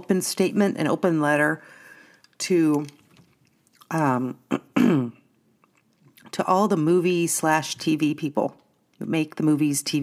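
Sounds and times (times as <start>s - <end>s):
speech: 0.0s - 1.8s, 2.4s - 3.0s, 3.9s - 5.1s, 6.3s - 10.0s
person coughing and clearing the throat: 4.5s - 5.2s.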